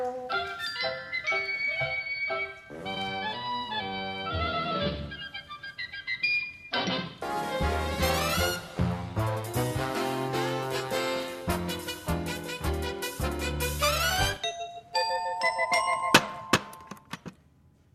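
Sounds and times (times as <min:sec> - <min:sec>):
full busy music: 0:00.0 - 0:17.0
doorbell ringing with bright chime tones: 0:14.4 - 0:16.9.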